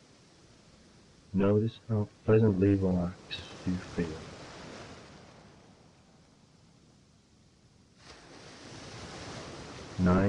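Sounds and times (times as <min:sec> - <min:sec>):
ocean surf washing onto the shore: 0:00.0 - 0:06.2, 0:08.0 - 0:10.2
speech: 0:01.4 - 0:04.3, 0:10.0 - 0:10.2.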